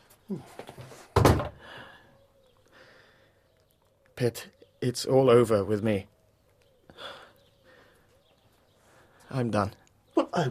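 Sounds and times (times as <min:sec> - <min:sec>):
speech: 0:00.3 - 0:00.6, 0:04.2 - 0:06.1, 0:09.3 - 0:10.5
door pushed shut with a solid thud and rattling: 0:01.2 - 0:01.6.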